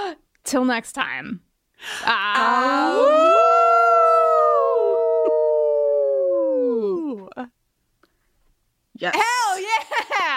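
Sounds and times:
speech: 0.5 - 3.4, 7.4 - 7.6, 9.0 - 10.3
human voices mimicking a wolf howl: 2.2 - 7.5.

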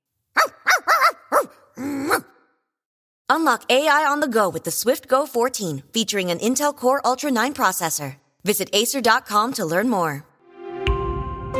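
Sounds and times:
dog barking at the mailman: 0.3 - 2.4
speech: 3.3 - 10.3.

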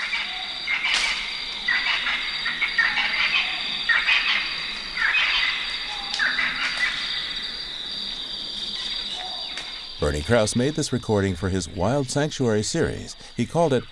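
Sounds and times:
baboons at a 300-foot cliff in a forest in Zimbabwe: 0.0 - 13.9
croaking amphibians in a forest in Zimbabwe: 0.0 - 13.9
high insect trilling in a forest in Zimbabwe: 0.0 - 13.9
speech: 10.1 - 13.9.

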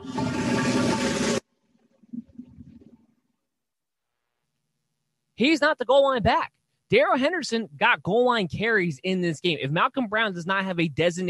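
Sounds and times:
toilet flushing: 0.0 - 3.1
water gurgling and draining as toilet bowl refills: 0.0 - 3.4
speech: 5.4 - 11.2.

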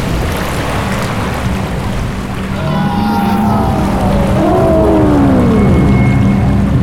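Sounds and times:
water rushing as it is poured out from a glass: 0.0 - 6.8
low sweeping whale-like moans: 2.4 - 6.8.

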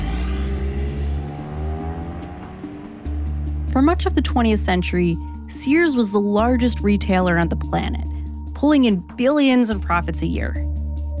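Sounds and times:
road noise: 0.0 - 5.3
car engine drone: 0.0 - 5.8
speech: 3.7 - 10.8.

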